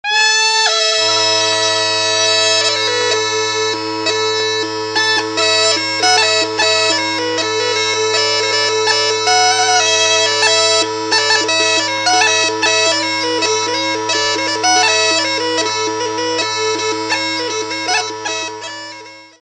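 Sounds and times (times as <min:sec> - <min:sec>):
duda solo: 0:00.0 - 0:19.4.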